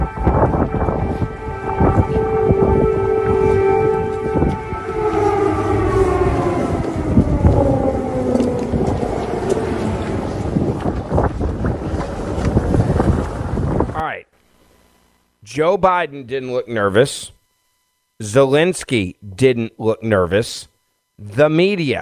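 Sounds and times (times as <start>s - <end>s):
air raid sirens wailing outdoors: 0.0s - 12.7s
rumble: 0.0s - 14.0s
gusty wind: 0.0s - 14.1s
speech: 15.6s - 17.4s, 18.2s - 22.0s.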